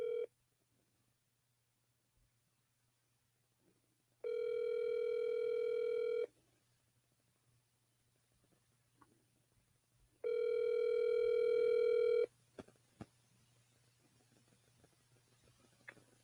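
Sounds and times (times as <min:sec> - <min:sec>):
outgoing phone call ringing tones: 0:00.0 - 0:00.3, 0:04.2 - 0:06.3, 0:10.2 - 0:12.3
faint low hum: 0:00.0 - 0:16.2.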